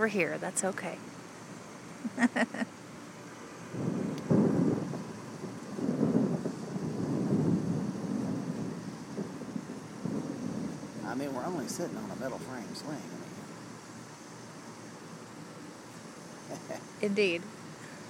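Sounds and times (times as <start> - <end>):
speech: 0.0 - 1.2, 2.0 - 2.8, 11.2 - 13.2, 16.6 - 17.6
steady wind or rain hiss: 0.0 - 18.0
low rolling thunder during a thunderstorm: 3.7 - 13.6.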